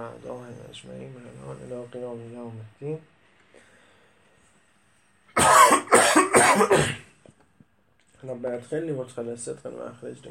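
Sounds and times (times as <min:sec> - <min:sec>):
speech: 0:00.0 - 0:03.2, 0:06.6 - 0:07.0, 0:08.2 - 0:10.2
harsh rasping coughs from someone with something stuck in the throat: 0:05.4 - 0:07.2.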